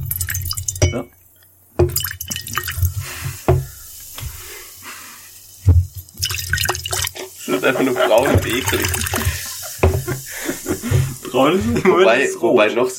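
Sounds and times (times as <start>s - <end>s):
liquid poured into a container in splashy bursts: 0.0s - 1.0s, 1.8s - 4.6s, 5.5s - 11.5s
liquid drips and gurgles: 0.0s - 11.6s
speech: 0.9s - 1.2s, 7.6s - 9.3s, 11.3s - 12.9s
laughter: 7.2s - 12.3s.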